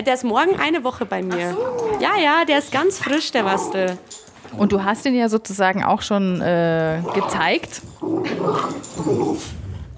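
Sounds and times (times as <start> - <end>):
speech: 0.0 - 9.6
dogs growling and snarling in a scuffle: 1.3 - 4.8, 6.9 - 9.9.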